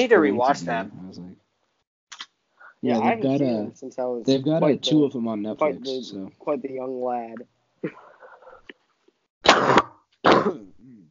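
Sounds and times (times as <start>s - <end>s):
speech: 0.0s - 1.3s, 2.8s - 8.1s, 10.4s - 11.0s
short raspy breath: 7.9s - 8.7s
person coughing harshly: 9.4s - 11.1s.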